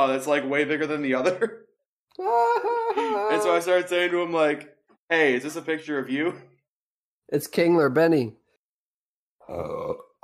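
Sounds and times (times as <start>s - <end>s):
speech: 0.0s - 6.5s, 7.3s - 8.4s, 9.5s - 10.1s
loud deep throaty burp: 9.4s - 10.2s.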